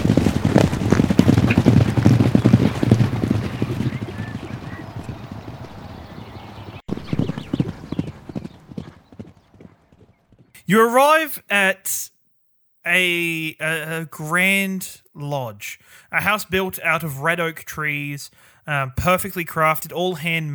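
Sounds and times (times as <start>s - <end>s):
horse hooves trotting with clip-clop rhythm: 0.0s - 10.6s
speech: 10.7s - 12.1s, 12.8s - 20.5s.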